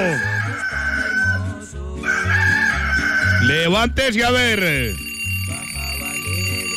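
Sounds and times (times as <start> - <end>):
rooster crowing: 0.0 - 3.6
speech: 3.4 - 5.1
alarm clock ringing: 4.3 - 6.7.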